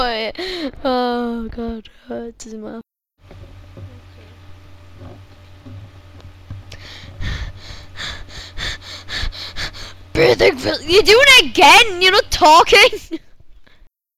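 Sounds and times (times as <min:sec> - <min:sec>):
speech: 0:00.1 - 0:02.9, 0:10.2 - 0:13.2
low hum: 0:00.6 - 0:13.8
heavy rapid breathing into the microphone: 0:06.7 - 0:10.1.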